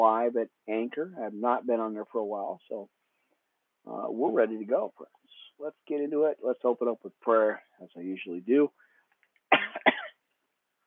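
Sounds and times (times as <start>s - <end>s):
speech: 0.0s - 3.0s, 3.8s - 8.8s
faint soft clicks: 9.1s - 9.5s
harsh coughs: 9.5s - 10.3s.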